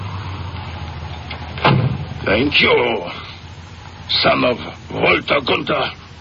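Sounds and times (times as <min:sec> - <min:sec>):
car coming to a stop with a thump: 0:00.0 - 0:02.9
car engine rumbling in a low droning hum: 0:00.0 - 0:06.2
speech: 0:02.3 - 0:03.2, 0:04.1 - 0:06.0.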